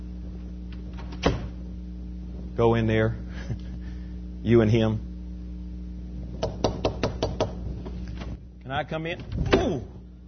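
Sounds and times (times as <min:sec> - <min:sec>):
faint low hum: 0:00.0 - 0:10.2
speech: 0:02.6 - 0:03.7, 0:04.4 - 0:05.1, 0:08.7 - 0:10.0
knocking on a door: 0:06.4 - 0:07.6.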